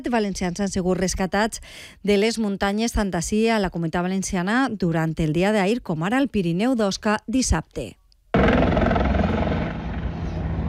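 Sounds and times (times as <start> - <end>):
speech: 0.0 - 8.0
rescue helicopter flying overhead: 8.4 - 10.6.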